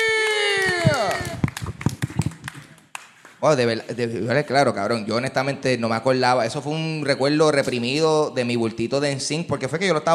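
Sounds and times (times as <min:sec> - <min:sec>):
crowd cheering with a long falling whoop: 0:00.0 - 0:02.9
scattered uneven clapping: 0:00.0 - 0:04.9
speech: 0:03.4 - 0:10.1.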